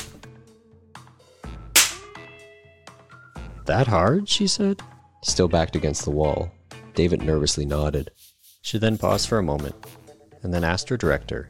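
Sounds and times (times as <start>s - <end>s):
slaps on bare skin: 1.8s - 2.2s
speech: 3.7s - 11.4s.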